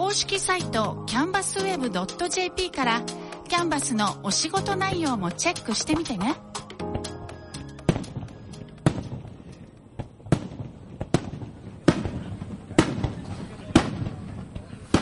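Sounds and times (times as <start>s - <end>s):
speech: 0.1s - 6.5s
crackling rumbling firework trails: 4.6s - 14.9s
fireworks launched and bursting at a fireworks festival: 6.7s - 14.9s.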